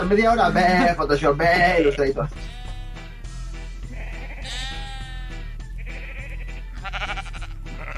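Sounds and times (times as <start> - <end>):
speech: 0.0 - 2.6
sheep bleating: 1.4 - 3.2, 3.8 - 7.9.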